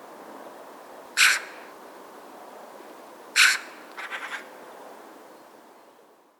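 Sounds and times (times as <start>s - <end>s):
Eurasian magpie squawking: 1.2s - 1.6s, 3.4s - 4.5s.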